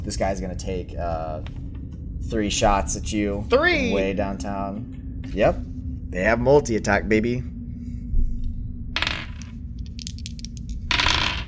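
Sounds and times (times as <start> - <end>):
low steady hum: 0.0 - 11.4
speech: 0.1 - 7.5
dice rolling on a table for a tabletop game: 9.0 - 11.4.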